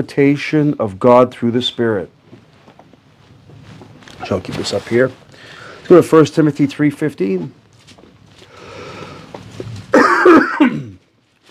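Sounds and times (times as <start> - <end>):
speech: 0.0 - 2.2, 4.2 - 7.6
person clearing throat: 9.9 - 11.0
person coughing roughly: 9.9 - 11.0.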